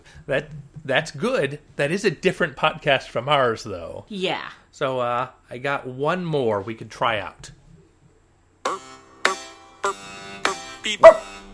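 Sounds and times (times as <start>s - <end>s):
speech: 0.2s - 7.6s, 10.8s - 11.3s
dog barking: 11.0s - 11.3s.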